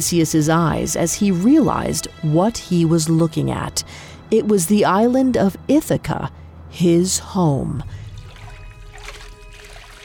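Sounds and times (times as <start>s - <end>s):
speech: 0.0s - 8.0s
water trickling and lapping in a pool: 8.1s - 10.0s.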